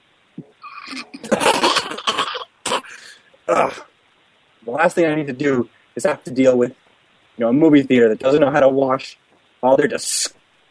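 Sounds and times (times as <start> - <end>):
person coughing harshly: 0.8 - 3.9
speech: 3.5 - 3.9, 4.6 - 6.8, 7.4 - 10.4.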